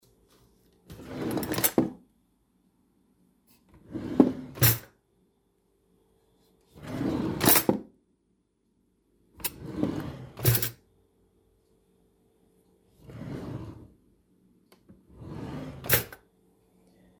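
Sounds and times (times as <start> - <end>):
cutlery drawer: 0.9 - 2.0, 3.8 - 4.9, 6.8 - 7.8, 9.4 - 10.8, 15.1 - 16.2.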